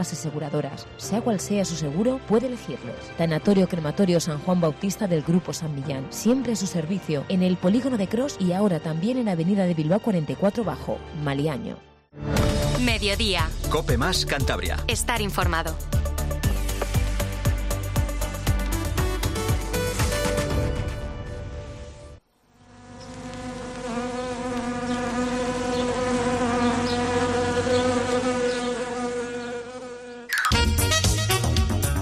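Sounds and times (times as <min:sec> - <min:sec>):
speech: 0:00.0 - 0:16.0
short bursts of upbeat music: 0:00.0 - 0:21.6, 0:30.3 - 0:32.0
loud steady buzzing of wasps: 0:22.3 - 0:31.0.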